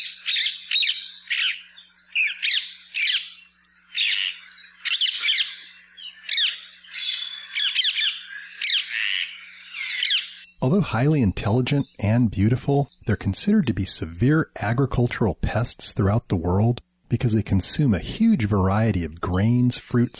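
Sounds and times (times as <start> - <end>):
flock of birds squawking and screeching: 0.0 - 3.3, 3.9 - 10.5
speech: 10.6 - 20.1.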